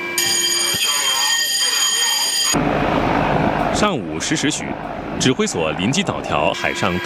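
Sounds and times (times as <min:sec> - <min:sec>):
military electronic alarm blaring: 0:00.0 - 0:07.0
dense roar of noise: 0:02.5 - 0:06.6
speech: 0:03.8 - 0:07.0.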